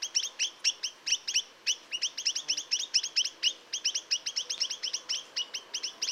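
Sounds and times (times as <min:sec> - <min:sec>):
Chinese nuthatch giving quick high nasal notes: 0:00.0 - 0:06.1.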